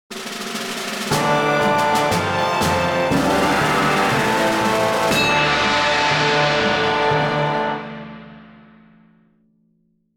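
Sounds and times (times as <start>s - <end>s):
victory jingle: 1.1s - 8.1s.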